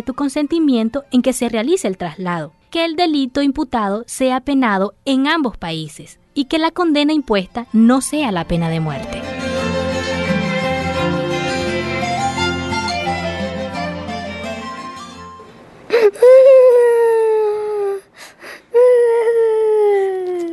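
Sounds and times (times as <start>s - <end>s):
speech: 0.0s - 9.4s
layered music: 9.1s - 15.4s
child wailing and sobbing: 15.9s - 18.1s, 18.7s - 20.5s.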